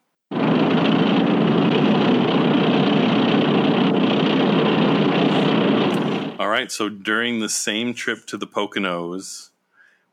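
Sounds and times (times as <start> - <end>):
sci-fi sandcrawler vehicle engine rolling along: 0.3 - 6.4
speech: 6.6 - 9.5.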